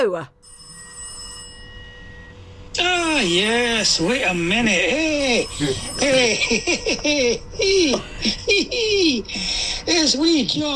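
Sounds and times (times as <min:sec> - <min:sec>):
speech: 0:00.0 - 0:00.5, 0:02.8 - 0:10.7
telephone ringing with a trilling bell tone: 0:00.4 - 0:07.8
laughter: 0:05.0 - 0:09.6.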